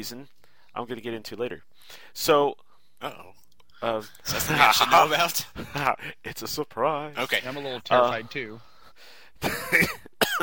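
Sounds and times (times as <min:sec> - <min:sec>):
speech: 0:00.0 - 0:10.4
person coughing harshly: 0:09.4 - 0:10.4.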